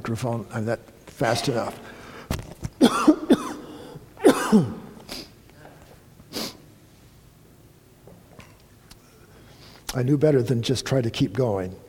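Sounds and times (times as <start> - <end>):
speech: 0.1 - 2.0, 4.5 - 4.8, 10.0 - 11.8
person coughing at a microphone: 2.8 - 5.0.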